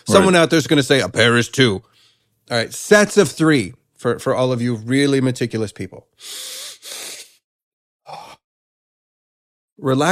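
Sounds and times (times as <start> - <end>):
speech: 0.0 - 1.9, 2.5 - 7.0, 9.8 - 10.0
deep inhale during breathing exercise: 6.2 - 7.4.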